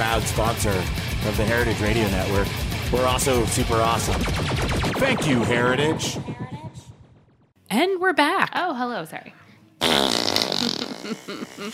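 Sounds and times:
speech: 0.0s - 6.4s, 7.7s - 9.9s, 10.7s - 11.7s
loud buzzy fart noise blown with the lips: 9.8s - 11.7s.

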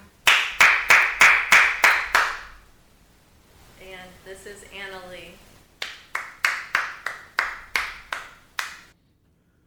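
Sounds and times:
single person clapping hands harshly: 0.3s - 2.5s, 5.8s - 8.9s.

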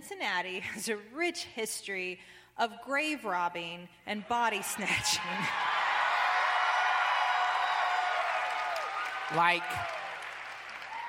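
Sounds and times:
speech: 0.1s - 5.8s, 9.3s - 10.0s
live audience cheering and whooping: 4.6s - 11.0s.

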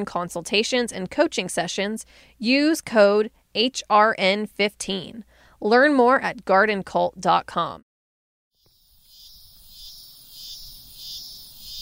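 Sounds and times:
speech: 0.0s - 7.9s
dense shrill insect buzz: 8.6s - 11.8s.

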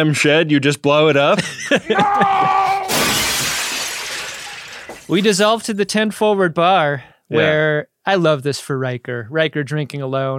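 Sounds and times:
speech: 0.0s - 3.3s, 5.1s - 10.3s
glass shattering: 2.9s - 5.6s.

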